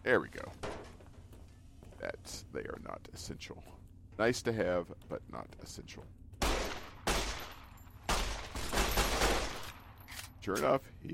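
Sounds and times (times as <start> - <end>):
speech: 0.0 - 0.7, 2.0 - 6.2, 10.4 - 11.1
video game gunfire: 6.4 - 10.0.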